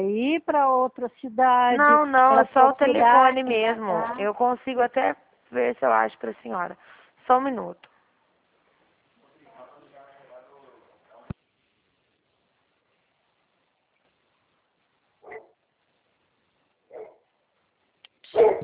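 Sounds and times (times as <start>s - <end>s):
speech: 0.0s - 7.9s
dog barking indoors during a phone call: 15.2s - 15.6s, 16.9s - 17.3s, 18.3s - 18.6s.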